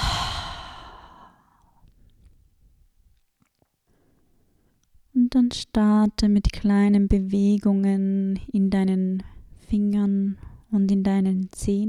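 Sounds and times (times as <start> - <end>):
slow breathy exhale through an open mouth during relaxation exercise: 0.0 - 1.4
speech: 5.4 - 11.8.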